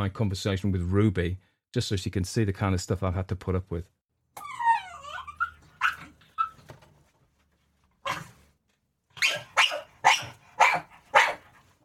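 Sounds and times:
speech: 0:00.0 - 0:04.5
dog whining and squeaking with high wavering yelps: 0:04.4 - 0:06.7, 0:09.2 - 0:11.4
dog barking sharply: 0:09.2 - 0:11.6.

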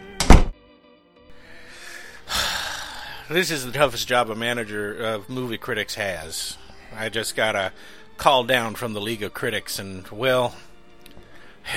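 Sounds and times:
office door shutting with heavy thud: 0:00.0 - 0:00.6
speech: 0:03.3 - 0:10.7.

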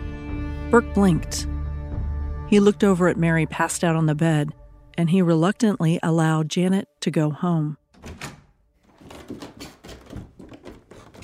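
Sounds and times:
speech: 0:00.7 - 0:01.5, 0:02.5 - 0:08.3
door opened and shut with wooden clunks and rattles: 0:07.9 - 0:11.2.

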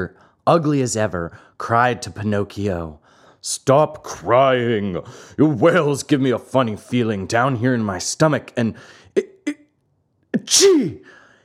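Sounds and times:
speech: 0:00.0 - 0:09.6, 0:10.3 - 0:11.2
man acting out sneezing: 0:10.4 - 0:11.3.

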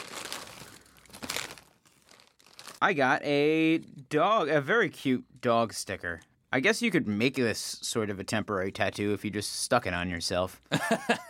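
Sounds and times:
small paper prize bag from a Cracker Jack box crinkling and tearing: 0:00.0 - 0:02.8
speech: 0:02.8 - 0:11.2
laughter: 0:10.7 - 0:11.2.

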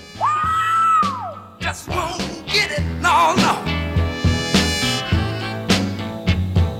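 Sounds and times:
soul singer screaming: 0:00.0 - 0:03.9
full band with horns and drums: 0:00.0 - 0:06.7
shouted vocals: 0:00.2 - 0:03.7.

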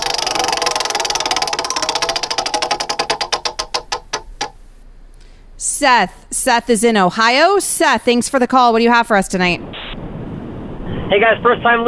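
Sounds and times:
prize wheel spinning and clicking: 0:00.0 - 0:04.6
speech: 0:05.8 - 0:09.7, 0:11.1 - 0:11.8.

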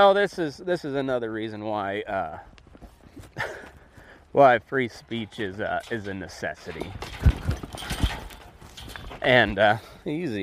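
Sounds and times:
speech: 0:00.0 - 0:02.6, 0:04.3 - 0:07.2, 0:09.2 - 0:10.4
horse hooves clip-clopping while ridden at a walk: 0:01.5 - 0:09.8.

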